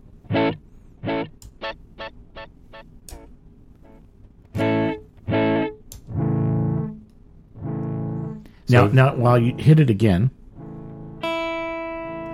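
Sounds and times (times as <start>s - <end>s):
smeared tape delay tones shifting with tape speed: 0.3s - 11.4s
honking horn-like bursts with tape delay echoes: 7.6s - 9.8s, 10.5s - 11.5s
speech: 8.7s - 10.4s.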